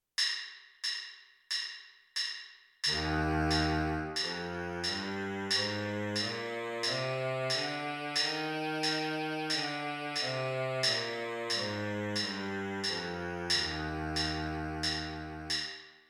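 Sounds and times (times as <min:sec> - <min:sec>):
baritone saxophone playing a C major scale in the lower octave: 0:02.9 - 0:15.6.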